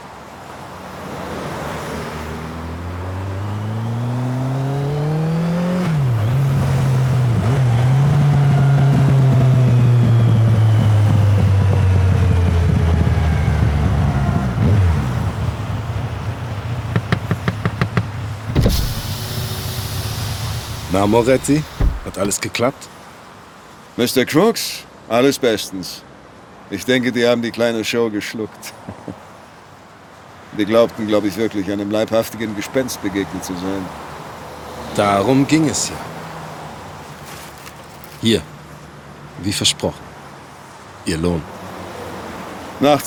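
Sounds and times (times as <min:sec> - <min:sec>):
car engine revving at a rest area on the Italian A5 motorway: 0:01.9 - 0:22.4
speech: 0:21.0 - 0:23.0, 0:24.0 - 0:26.1, 0:26.7 - 0:29.2, 0:30.6 - 0:34.1, 0:35.0 - 0:36.1, 0:38.2 - 0:38.5, 0:39.4 - 0:40.1, 0:41.0 - 0:41.6, 0:42.8 - 0:43.0.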